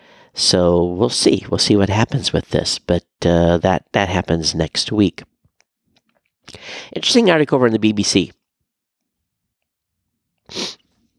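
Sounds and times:
speech: 0:00.4 - 0:05.3, 0:06.5 - 0:08.4
stifled sneeze: 0:10.5 - 0:10.8.

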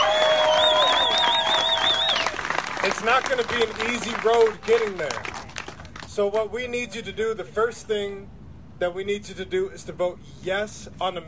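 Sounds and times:
loud wavering whistle: 0:00.0 - 0:02.4
audience applauding and cheering: 0:00.0 - 0:06.1
speech: 0:02.8 - 0:05.3, 0:06.2 - 0:11.2.

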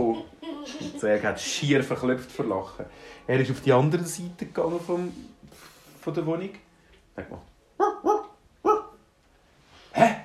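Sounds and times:
speech: 0:00.1 - 0:06.6, 0:07.2 - 0:07.5
dog barking: 0:07.8 - 0:09.0.

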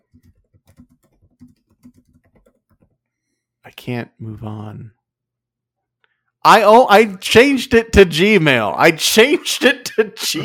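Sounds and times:
typing on a computer keyboard: 0:00.0 - 0:03.0
speech: 0:03.7 - 0:05.0, 0:06.4 - 0:10.4.

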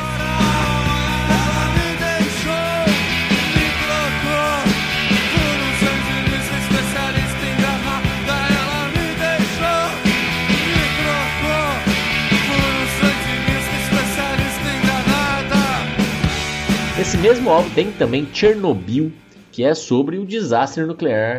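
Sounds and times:
sung vocal line carrying the melody: 0:00.0 - 0:16.0
full band playing a song chorus: 0:00.0 - 0:18.6
driving drums: 0:00.0 - 0:19.5
speech: 0:17.2 - 0:21.3.

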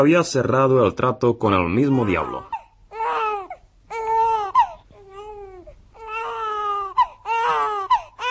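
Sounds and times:
speech: 0:00.0 - 0:02.6
newborn baby crying in wailing bursts: 0:01.7 - 0:08.2.

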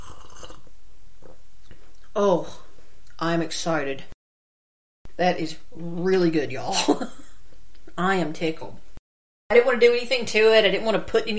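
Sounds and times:
slurping hot cider from a cup: 0:00.0 - 0:01.4
speech: 0:02.2 - 0:02.6, 0:03.2 - 0:04.1, 0:05.2 - 0:07.2, 0:08.0 - 0:08.8, 0:09.5 - 0:11.3.

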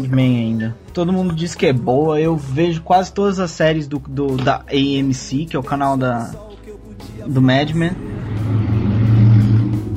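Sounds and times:
speech: 0:00.0 - 0:06.6, 0:07.2 - 0:08.1
motorcycle engine rumbling past: 0:08.0 - 0:09.9.

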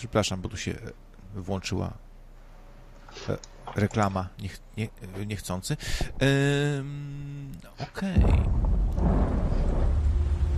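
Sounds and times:
speech: 0:00.0 - 0:02.1, 0:03.1 - 0:09.2
thunder rumbling: 0:08.2 - 0:10.5.

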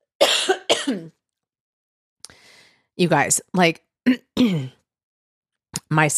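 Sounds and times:
harsh coughs: 0:00.2 - 0:01.2, 0:04.3 - 0:04.8
speech: 0:03.0 - 0:04.8, 0:05.9 - 0:06.1.

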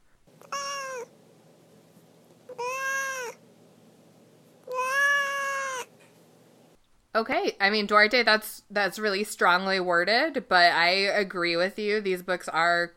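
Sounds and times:
domestic cat meowing: 0:00.4 - 0:01.1, 0:02.5 - 0:03.4, 0:04.6 - 0:05.9
speech: 0:07.2 - 0:12.9.

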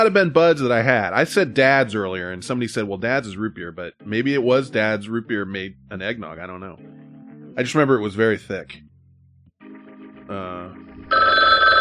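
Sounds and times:
speech: 0:00.0 - 0:07.0, 0:07.6 - 0:08.8, 0:10.3 - 0:11.6
telephone ringing with a loud steady electronic trill: 0:11.1 - 0:11.7.

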